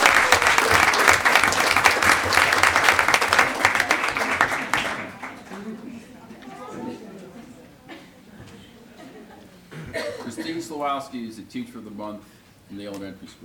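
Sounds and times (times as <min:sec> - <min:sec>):
crowd applauding loudly: 0:00.0 - 0:07.6
laughter: 0:00.0 - 0:10.6
faint murmurs: 0:03.4 - 0:10.6
speech: 0:10.8 - 0:13.4.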